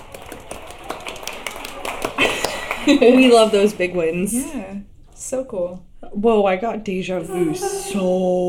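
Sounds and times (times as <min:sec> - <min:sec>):
brief round of applause from a small group: 0:00.0 - 0:04.1
speech: 0:02.9 - 0:08.4.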